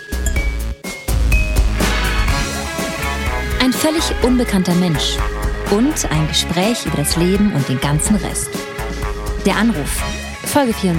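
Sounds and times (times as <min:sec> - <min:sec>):
glasses clinking in a toast: 0:00.0 - 0:00.6
busy music: 0:00.0 - 0:10.9
speech: 0:03.8 - 0:08.6, 0:09.4 - 0:10.9.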